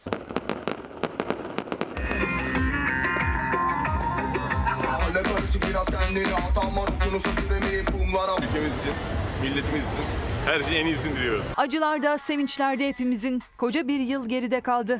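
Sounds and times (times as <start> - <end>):
fireworks exploding in the sky: 0.0 - 8.0
speech: 5.2 - 14.9.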